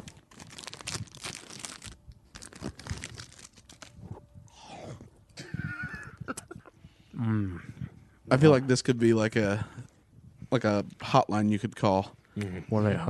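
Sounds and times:
plastic candy wrapper crinkling: 0:00.0 - 0:04.3
speech: 0:08.3 - 0:09.8, 0:10.5 - 0:13.0.

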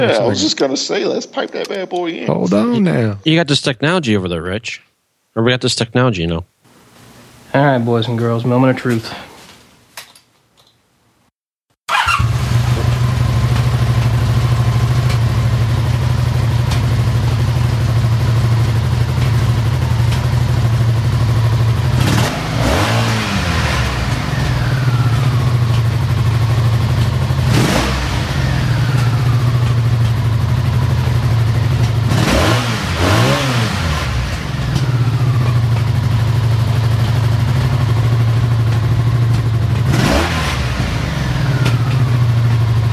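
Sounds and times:
speech: 0:00.0 - 0:06.5, 0:07.5 - 0:09.3
carbureted engine idling with low rumble: 0:11.9 - 0:42.9
sharp exhaust pops of carbureted engine: 0:11.9 - 0:42.9.

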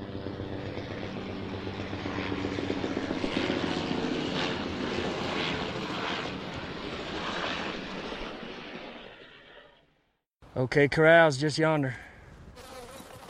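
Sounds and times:
helicopters thrumming overhead: 0:00.0 - 0:10.0
speech: 0:10.6 - 0:12.0.

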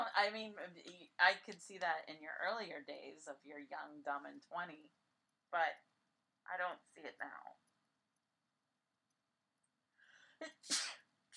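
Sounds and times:
speech: 0:00.1 - 0:07.6, 0:10.4 - 0:11.3
sneeze: 0:10.4 - 0:11.3.

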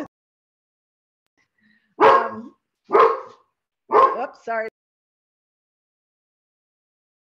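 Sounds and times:
pet dog barking: 0:02.0 - 0:04.4.

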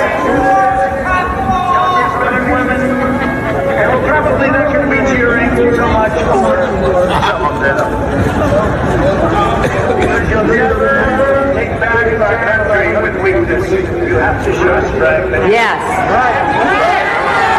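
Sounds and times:
people shouting in a crowd: 0:00.0 - 0:04.0, 0:15.8 - 0:17.5
laughter: 0:00.0 - 0:12.1
large outdoor rally crowd roaring and murmuring: 0:00.0 - 0:17.5.

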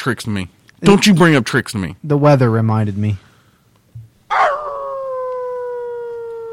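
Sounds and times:
speech: 0:00.0 - 0:03.3
dog howling: 0:04.3 - 0:06.5.

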